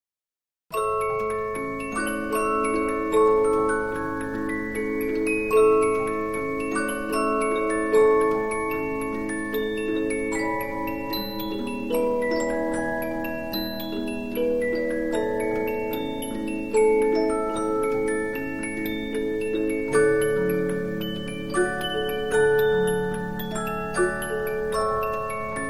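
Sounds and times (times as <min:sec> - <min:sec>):
15 inch disc music box playing: 0:00.7 - 0:25.6.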